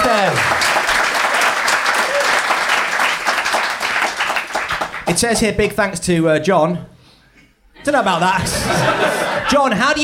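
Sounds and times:
audience applause: 0.0s - 5.2s
speech: 5.2s - 6.9s, 7.8s - 10.0s
laughter: 7.8s - 10.0s.

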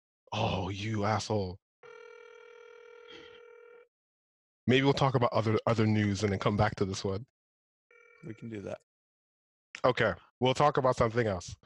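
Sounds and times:
speech: 0.3s - 1.6s, 4.7s - 7.4s, 8.2s - 8.9s, 9.8s - 11.6s
outgoing phone call ringing tone: 1.8s - 3.9s, 7.9s - 8.7s.

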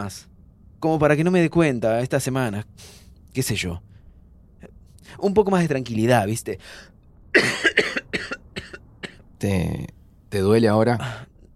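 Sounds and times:
speech: 0.0s - 3.9s, 4.6s - 8.2s, 9.4s - 11.5s
person coughing harshly: 7.4s - 9.2s.

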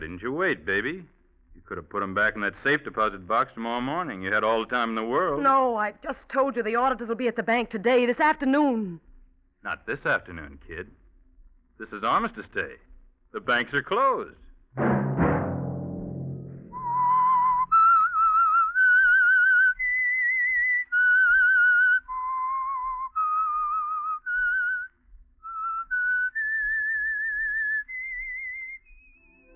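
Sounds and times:
speech: 0.0s - 11.0s, 11.8s - 15.0s
brief low rumble: 14.8s - 18.3s
solo whistled program theme melody with slight vibrato: 16.7s - 29.5s.

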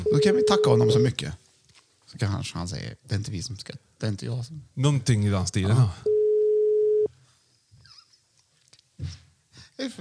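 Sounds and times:
telephone ringing tone while placing a call: 0.0s - 1.1s, 6.1s - 7.1s
speech: 0.0s - 1.4s, 2.1s - 6.1s, 9.8s - 9.9s.

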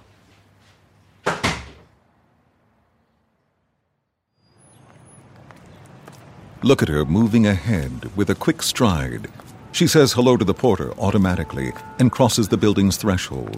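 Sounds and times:
door thudding shut: 1.2s - 1.9s
outdoor ambience: 2.0s - 13.5s
faint footsteps: 4.7s - 13.5s
speech: 6.6s - 13.5s.

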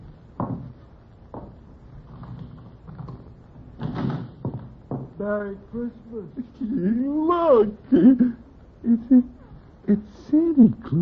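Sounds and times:
wooden door being opened with knocks and rattles: 2.2s - 5.2s
speech: 5.2s - 10.9s.

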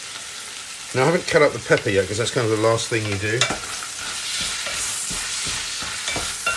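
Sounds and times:
bacon sizzling in a frying pan: 0.0s - 6.5s
speech: 0.9s - 3.8s
soft scraping knocks in a frying pan: 3.4s - 6.5s.

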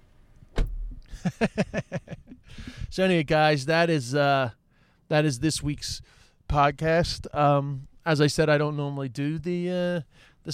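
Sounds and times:
rental car door shutting: 0.5s - 1.0s
speech: 1.2s - 2.0s, 2.9s - 10.5s.

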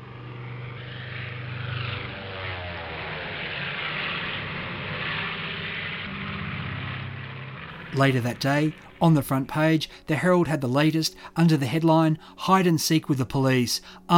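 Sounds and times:
Sopwith biplane propeller engine droning before takeoff: 0.0s - 10.1s
speech: 7.9s - 14.1s.

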